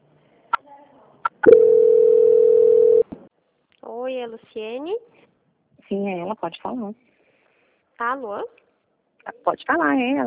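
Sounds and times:
steady single-pitched telephone line tone during a call transfer: 1.4s - 3.1s
speech: 4.2s - 5.3s, 5.9s - 7.1s, 8.0s - 8.6s, 9.2s - 10.2s.

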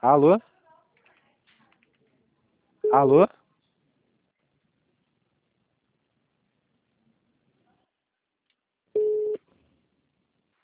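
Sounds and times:
speech: 0.0s - 0.5s, 2.9s - 3.4s
call-waiting beep on a phone line during a sales call: 2.8s - 3.1s, 9.0s - 9.4s.

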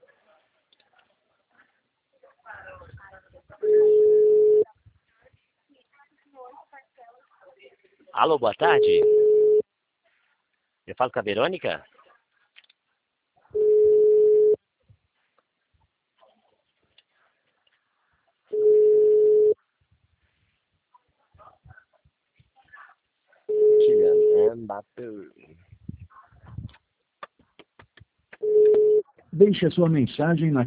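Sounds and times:
telephone line tone on a call that fails to connect: 3.6s - 4.6s, 8.7s - 9.6s, 13.6s - 14.6s, 18.5s - 19.6s, 23.5s - 24.5s, 28.4s - 29.0s
speech: 8.2s - 9.2s, 11.0s - 11.9s, 29.6s - 30.6s.

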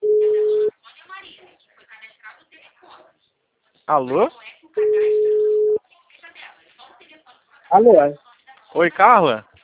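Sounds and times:
telephone busy tone after a dropped call: 0.0s - 0.7s, 4.8s - 5.8s
speech: 3.9s - 5.1s, 7.7s - 9.5s.

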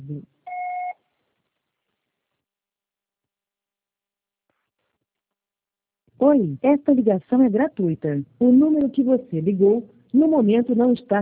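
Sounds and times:
speech: 0.1s - 0.3s, 6.3s - 11.1s
phone voicemail system electronic beep: 0.5s - 1.0s.

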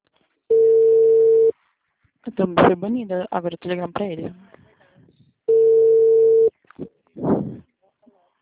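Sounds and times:
ringback tone of an outgoing telephone call: 0.5s - 1.5s, 5.5s - 6.5s
speech: 2.3s - 4.6s.

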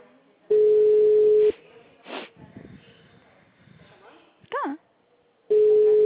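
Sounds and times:
faint scattered sounds: 0.0s - 6.0s
telephone ringback tone on an outgoing call: 0.5s - 1.5s, 5.5s - 6.0s.

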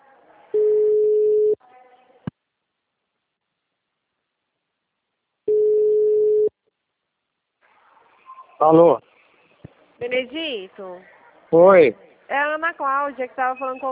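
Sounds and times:
telephone ringing tone while calling someone back: 0.6s - 1.6s, 5.5s - 6.5s
speech: 8.6s - 9.1s, 10.0s - 13.8s.

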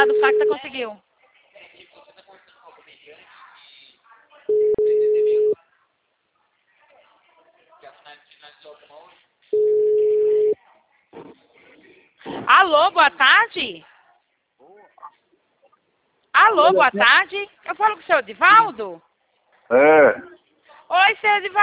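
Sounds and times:
speech: 0.0s - 1.1s, 12.2s - 13.9s, 16.4s - 19.1s, 19.7s - 21.6s
people talking: 0.7s - 21.6s
telephone ringing tone beeps while calling someone: 4.5s - 5.6s, 9.6s - 10.6s.

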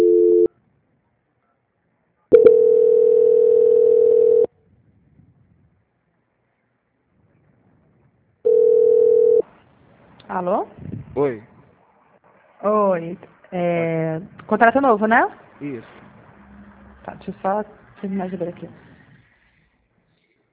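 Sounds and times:
telephone line tone while a call is transferred: 0.0s - 0.5s, 2.3s - 4.5s, 8.4s - 9.4s
speech: 10.4s - 11.5s, 12.6s - 16.0s, 17.1s - 18.9s.

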